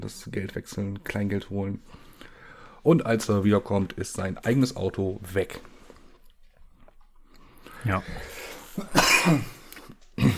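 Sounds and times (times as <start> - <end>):
speech: 0.0 - 2.1, 2.8 - 5.7, 7.8 - 9.6
person coughing after swallowing the wrong way: 8.8 - 9.6, 10.2 - 10.3
throat clearing: 8.8 - 9.6, 10.2 - 10.3.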